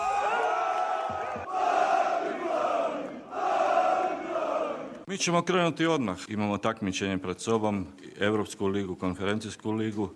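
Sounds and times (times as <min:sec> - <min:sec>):
thousands of football fans chanting and shouting outside a stadium: 0:00.0 - 0:05.1
speech: 0:05.1 - 0:10.1.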